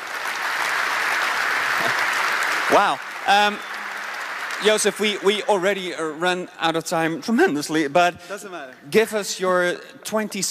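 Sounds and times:
audience applause at a startup pitch event: 0:00.0 - 0:07.0
speech: 0:02.7 - 0:03.7, 0:04.6 - 0:10.4.

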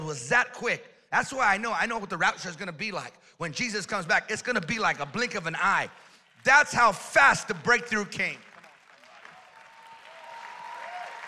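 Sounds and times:
speech: 0:00.1 - 0:08.5
audience clapping: 0:04.7 - 0:11.2.

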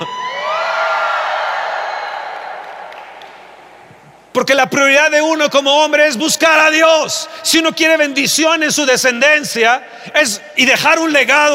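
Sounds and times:
crowd of women in an audience shouting for joy: 0:00.0 - 0:03.5
speech: 0:04.4 - 0:11.5.

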